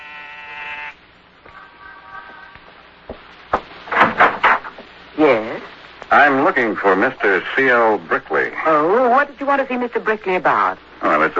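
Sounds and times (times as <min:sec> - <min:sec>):
apartment door buzzer with harsh electric tone: 0:00.0 - 0:01.0
knocks and clunks of a door being handled: 0:03.1 - 0:04.9
speech: 0:06.1 - 0:11.3.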